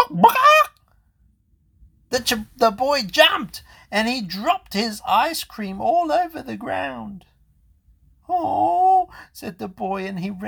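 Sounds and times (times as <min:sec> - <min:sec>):
chicken squawk: 0:00.0 - 0:00.7
speech: 0:02.2 - 0:07.3, 0:08.3 - 0:10.4.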